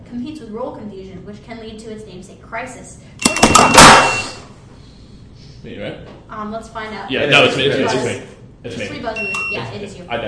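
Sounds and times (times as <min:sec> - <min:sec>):
speech: 0:00.1 - 0:04.4, 0:05.6 - 0:10.2
quiz buzzer beeping: 0:03.6 - 0:04.5, 0:09.0 - 0:09.8.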